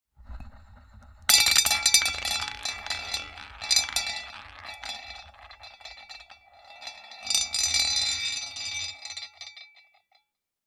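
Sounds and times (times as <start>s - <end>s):
roulette wheel spinning: 1.3s - 9.1s.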